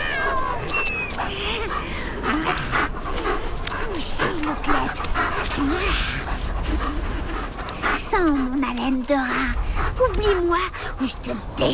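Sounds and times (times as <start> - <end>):
dog whining with shrill cries: 0.0 - 7.6
dog barking and panting while lunging: 0.0 - 11.7
speech: 10.2 - 11.7.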